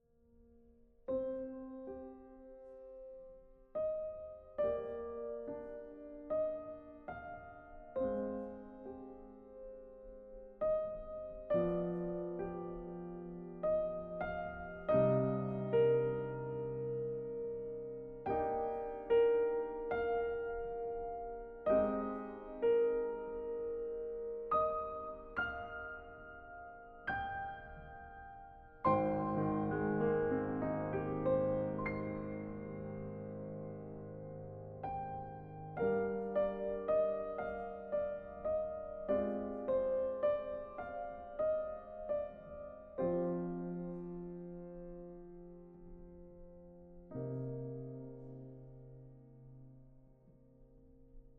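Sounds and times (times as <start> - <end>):
piano background music: 0.2 - 51.3.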